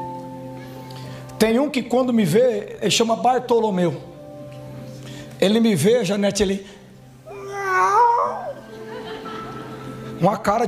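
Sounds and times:
speech: 1.4s - 4.1s, 5.4s - 6.8s, 10.2s - 10.6s
person imitating a kitten's meow: 7.3s - 8.6s
laughter: 8.6s - 10.2s.

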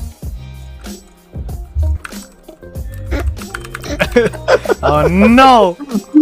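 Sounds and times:
computer keyboard typing a chat message: 0.8s - 4.5s
laughter: 2.9s - 6.1s
speech: 4.2s - 6.1s.

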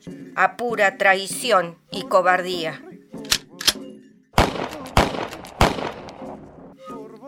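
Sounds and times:
speech: 0.0s - 2.9s
gunshots in a forest: 4.4s - 6.8s.

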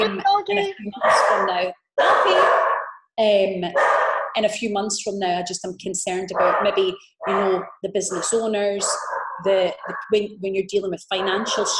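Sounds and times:
speech: 0.0s - 11.7s
dog barking at the door: 1.0s - 3.0s, 3.8s - 4.4s, 6.4s - 10.1s, 11.2s - 11.7s.

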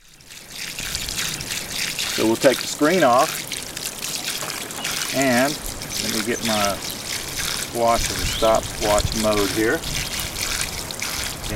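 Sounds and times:
spring water trickling at low flow: 0.0s - 11.5s
speech: 2.2s - 3.4s, 5.1s - 6.9s, 7.7s - 10.0s.

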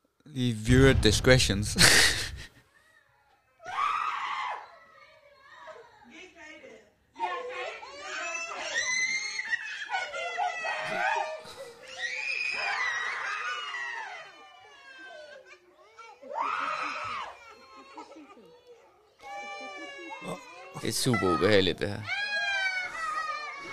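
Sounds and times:
speech: 0.2s - 2.3s, 21.0s - 22.2s
laughter: 1.4s - 2.6s, 9.5s - 12.0s, 13.2s - 21.6s
children screaming and wailing in terror: 1.8s - 6.1s, 7.2s - 23.7s.

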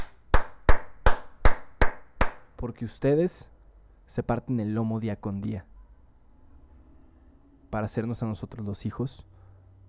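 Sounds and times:
person clapping: 0.0s - 2.5s
speech: 2.6s - 3.5s, 4.1s - 5.7s, 7.7s - 9.3s.

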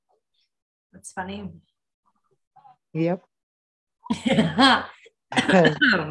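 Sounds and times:
speech: 0.9s - 1.7s, 2.9s - 3.3s, 4.1s - 6.0s
throaty rough coughing: 5.3s - 6.0s.

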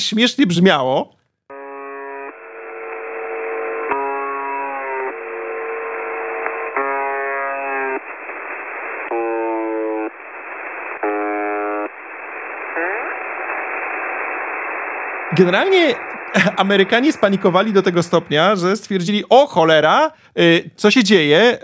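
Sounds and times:
speech: 0.0s - 1.2s, 15.4s - 21.6s
malfunctioning shortwave radio station buzzer: 1.5s - 14.4s, 15.0s - 18.7s
narrow hissy shortwave radio static: 1.5s - 20.1s.

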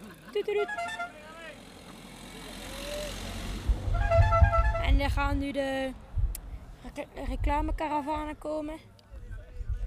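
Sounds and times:
car engine rumble on a very steep road: 0.0s - 8.2s
speech: 0.4s - 1.2s, 4.9s - 6.0s, 6.8s - 8.9s.

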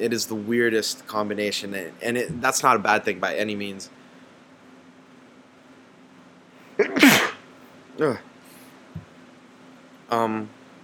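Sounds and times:
speech: 0.0s - 4.0s, 8.0s - 8.3s, 10.1s - 10.6s
low steady hum: 0.0s - 10.8s
person sneezing: 6.8s - 7.4s.

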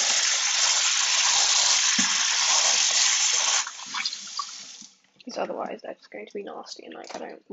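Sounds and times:
running water rinsing plastic containers for recycling: 0.0s - 5.0s
speech: 5.4s - 7.5s.

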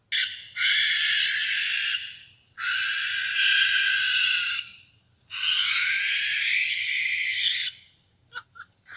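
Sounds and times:
barn owl screeching: 0.1s - 8.9s.

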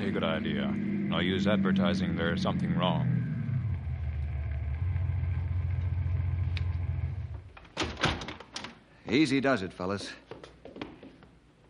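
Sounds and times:
car engine rumble as the vehicle coasts to a stop: 0.0s - 7.5s
speech: 0.2s - 3.2s, 9.1s - 10.3s.

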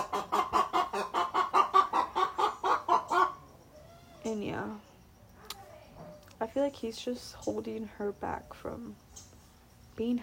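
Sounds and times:
rooster clucking: 0.0s - 3.5s
speech: 4.3s - 4.9s, 6.4s - 9.0s, 10.0s - 10.2s.

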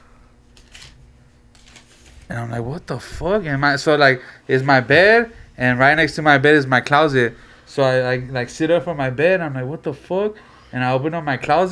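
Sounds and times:
low steady hum: 0.0s - 11.7s
paper rustling while being handled: 0.5s - 2.4s
speech: 2.3s - 11.7s.

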